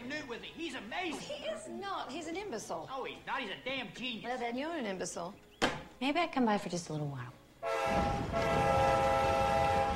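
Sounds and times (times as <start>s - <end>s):
speech: 0.4s - 9.5s
sustained horn-like tonal drones: 7.6s - 9.9s
train crossing a long bridge over a calmly flowing river: 7.6s - 9.9s.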